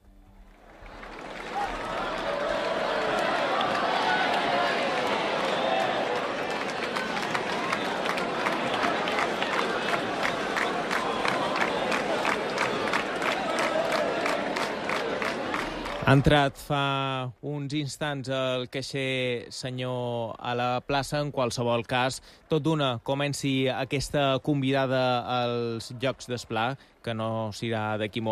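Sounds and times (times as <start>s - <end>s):
roar of many voices of a dense festival crowd in a town square: 0.8s - 16.2s
speech: 16.1s - 28.2s.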